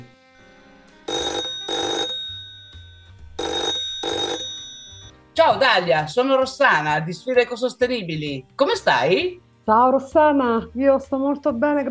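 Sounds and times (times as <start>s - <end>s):
telephone ringing on an outgoing call: 1.1s - 5.2s
speech: 5.4s - 11.8s.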